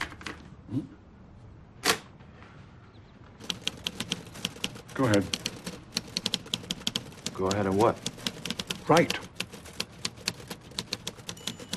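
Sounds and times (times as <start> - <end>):
speech: 0.7 - 1.0, 5.0 - 5.4, 7.4 - 8.1, 8.9 - 9.3
typewriter keys clicking: 3.4 - 11.7.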